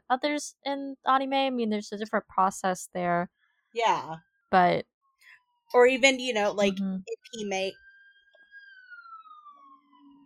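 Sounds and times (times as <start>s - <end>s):
speech: 0.1s - 4.9s, 5.7s - 7.8s
police siren wailing outside: 8.4s - 10.2s.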